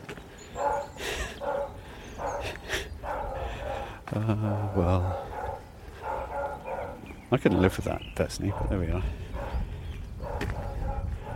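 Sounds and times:
brown Labrador cross dog barking angrily: 0.6 - 4.0, 4.7 - 7.8, 8.5 - 9.6, 10.2 - 11.3
laughter: 4.1 - 5.0
speech: 4.2 - 5.3, 7.3 - 9.2.

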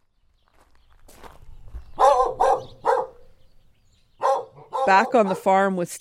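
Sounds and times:
dog barking at a microphone: 2.0 - 3.3, 4.2 - 5.6
speech: 4.9 - 6.0.

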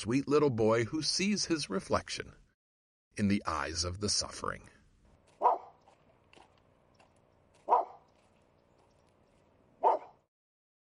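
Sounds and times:
speech: 0.0 - 2.4, 3.2 - 4.8
small lame snaggletooth Shih Tzu barking: 5.4 - 5.8, 7.6 - 8.1, 9.8 - 10.3.

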